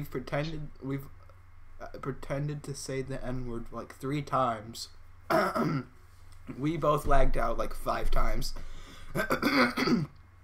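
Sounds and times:
speech: 0:00.0 - 0:01.2, 0:01.8 - 0:10.2
throat clearing: 0:05.3 - 0:05.9, 0:09.2 - 0:10.2.

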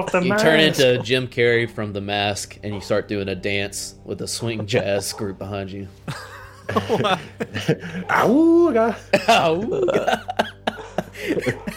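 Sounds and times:
speech: 0:00.0 - 0:10.5, 0:11.2 - 0:11.7
laughter: 0:06.0 - 0:11.7
dogs whimpering and whining: 0:10.6 - 0:11.7.

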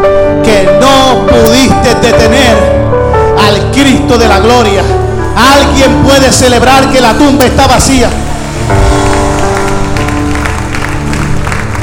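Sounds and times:
sustained music: 0:00.0 - 0:11.8
speech: 0:03.8 - 0:08.8
audience applauding: 0:07.8 - 0:11.8.

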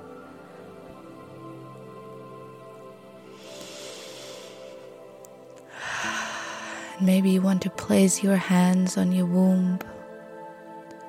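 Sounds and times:
deep breath drawn in during a guided womb-centred exercise: 0:03.3 - 0:05.0, 0:05.7 - 0:07.0
speech: 0:07.0 - 0:10.0.

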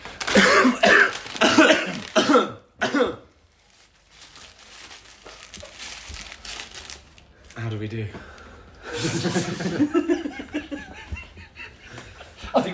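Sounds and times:
food wrapper being opened: 0:00.0 - 0:02.2, 0:03.4 - 0:07.6
person coughing deliberately: 0:00.3 - 0:03.3
laughter: 0:08.9 - 0:12.7
speech: 0:09.2 - 0:10.0.

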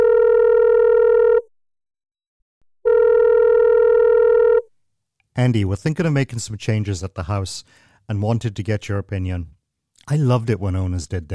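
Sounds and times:
telephone ringing tone as steady electronic buzz: 0:00.0 - 0:01.5, 0:02.8 - 0:04.7
speech: 0:05.4 - 0:11.3.

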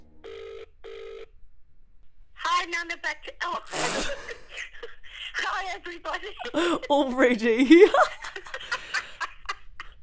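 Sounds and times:
telephone ringback tone from an outgoing call: 0:00.2 - 0:01.3
speech: 0:02.7 - 0:04.7, 0:05.4 - 0:08.2
laughter: 0:04.0 - 0:10.0.

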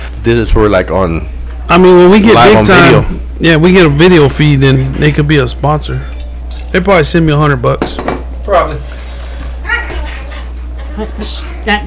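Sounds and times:
speech: 0:00.2 - 0:09.0, 0:11.0 - 0:11.8
dog whining yelps: 0:09.6 - 0:10.4.

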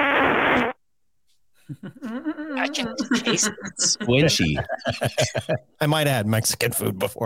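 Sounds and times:
recorded fart played back from a phone: 0:00.0 - 0:00.8
laughter: 0:01.7 - 0:05.8
speech: 0:01.7 - 0:07.2.

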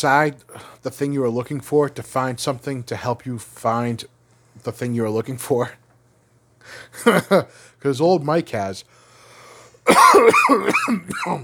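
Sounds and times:
speech: 0:00.0 - 0:05.8, 0:06.6 - 0:09.0, 0:09.9 - 0:11.4
person coughing directly into the microphone: 0:07.0 - 0:07.5, 0:09.9 - 0:11.4.

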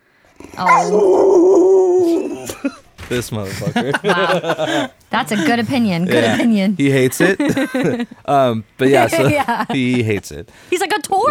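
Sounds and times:
dog whining and growling: 0:00.4 - 0:02.6
speech: 0:00.6 - 0:11.2
laughter: 0:02.1 - 0:10.4.

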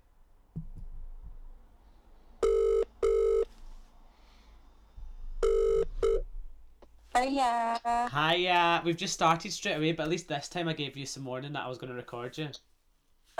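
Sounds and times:
outgoing phone call double-burst ringback tones: 0:02.4 - 0:03.5, 0:05.4 - 0:06.2
speech: 0:07.2 - 0:12.7.

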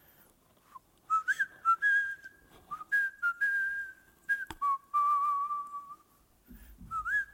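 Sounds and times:
person whistling a children's TV show theme tune in a conference room: 0:01.1 - 0:06.1, 0:06.8 - 0:07.3.

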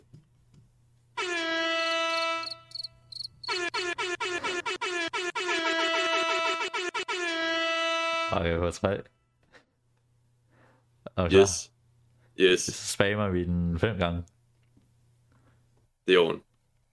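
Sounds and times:
air horn blasts: 0:01.2 - 0:02.7, 0:03.5 - 0:08.6
speech: 0:08.3 - 0:09.2, 0:11.2 - 0:11.8, 0:12.4 - 0:14.4, 0:16.1 - 0:16.5.

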